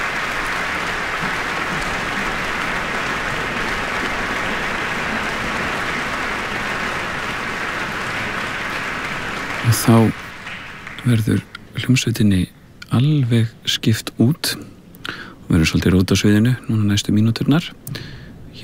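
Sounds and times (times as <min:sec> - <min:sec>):
audience applauding in a concert hall after an orchestral performance: 0:00.0 - 0:11.8
speech: 0:09.7 - 0:10.2, 0:11.0 - 0:18.6.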